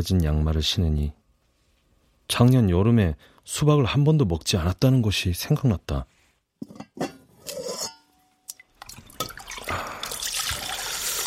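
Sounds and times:
speech: 0.0 - 1.2, 2.3 - 7.1
drips: 8.5 - 11.2
bone broth pouring into a pot: 8.8 - 11.2.

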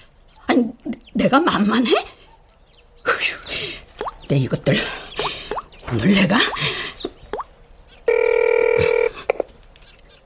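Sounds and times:
speech: 0.6 - 2.2, 3.2 - 3.4, 4.3 - 5.0, 5.9 - 6.8
phone ringing with a steady electronic tone: 8.1 - 9.5.

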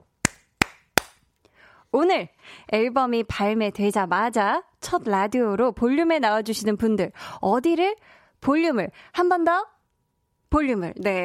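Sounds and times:
sharp crisp hand claps: 0.2 - 1.2
speech: 1.9 - 9.7, 10.5 - 11.2.

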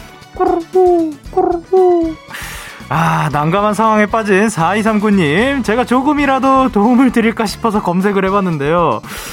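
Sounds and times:
pigeon cooing: 0.4 - 2.2
speech: 0.4 - 2.3, 2.9 - 9.3.

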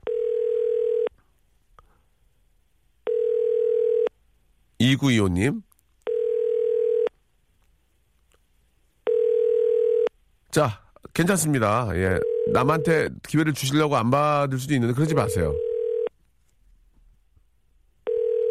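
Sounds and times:
phone ringback tone while placing a call: 0.0 - 1.1, 3.0 - 4.1, 6.1 - 7.1, 9.1 - 10.1, 12.2 - 13.0, 15.1 - 16.1, 18.0 - 18.4
speech: 4.8 - 5.7, 10.6 - 15.7.

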